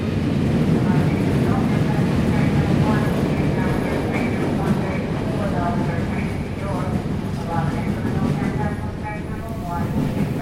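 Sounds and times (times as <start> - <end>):
loud rumble of rail traffic in a train station: 0.0 - 10.4.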